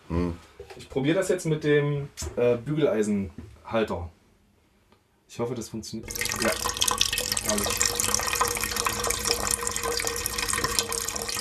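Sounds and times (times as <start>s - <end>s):
speech: 0.1s - 4.2s, 5.3s - 7.9s
water pouring from a plant watering can: 6.0s - 11.4s.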